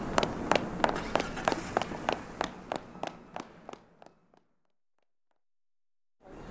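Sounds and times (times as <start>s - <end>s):
broad steady rushing noise: 0.0s - 3.1s
running footsteps of someone chasing another person through town: 0.0s - 4.4s.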